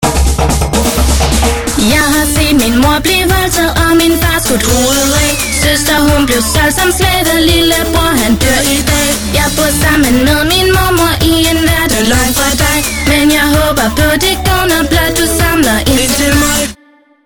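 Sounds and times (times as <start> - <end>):
TV spot music intro: 0.0 - 16.8.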